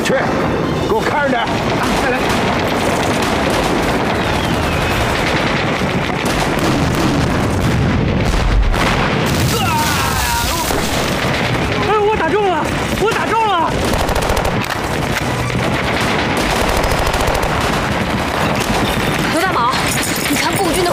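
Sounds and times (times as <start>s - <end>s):
speech: 0.1s - 3.2s
dense continuous rattling gunfire in a battle: 1.4s - 7.8s, 10.6s - 20.9s
Communist forces' heavy guns booming in a battle: 1.4s - 20.9s
people shouting: 9.4s - 10.9s.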